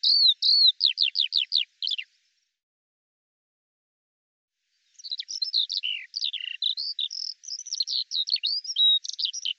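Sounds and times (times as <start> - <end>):
Eurasian skylark song of rolling notes and high chirps: 0.0 - 2.1, 5.0 - 9.5.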